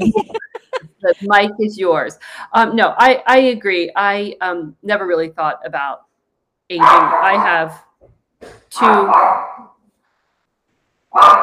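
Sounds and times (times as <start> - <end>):
speech: 0.0 - 0.2, 1.2 - 6.1, 6.7 - 9.7, 11.1 - 11.4
laughter: 0.0 - 1.6
puppy barking: 6.8 - 7.6, 8.8 - 9.7, 11.2 - 11.4.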